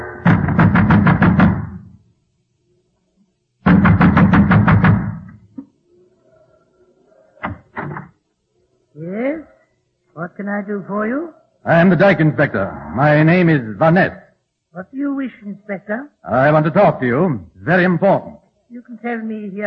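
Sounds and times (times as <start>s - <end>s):
fist pounding on a door: 0.3s - 1.9s, 3.7s - 5.4s
speech: 10.5s - 14.2s, 14.7s - 19.6s.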